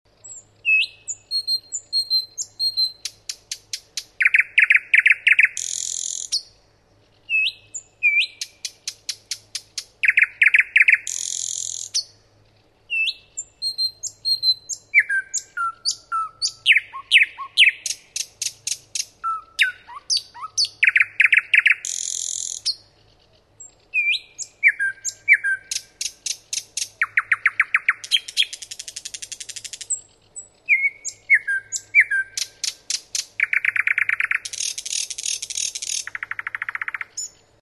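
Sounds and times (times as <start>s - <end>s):
common nightingale singing: 0.1s - 37.5s.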